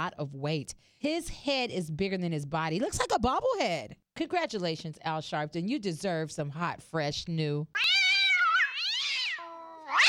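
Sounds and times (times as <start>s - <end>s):
speech: 0.0s - 7.9s
cat meowing: 7.8s - 10.0s.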